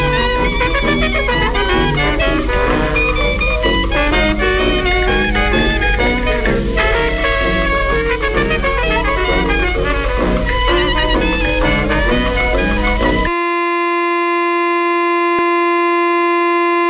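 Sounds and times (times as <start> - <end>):
dense music: 0.0 - 13.3
steady siren tone: 0.0 - 16.8.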